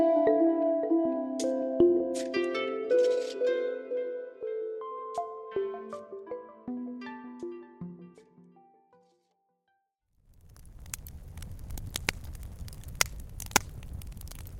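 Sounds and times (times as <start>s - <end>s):
musical tones: 0.0s - 8.9s
smokeless fire pit fire crackling with pops and snaps: 10.2s - 14.5s.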